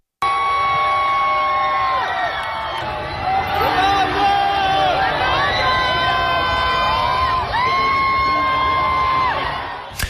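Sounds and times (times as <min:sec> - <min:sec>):
crowd of fans shouting and cheering: 0:00.2 - 0:10.0.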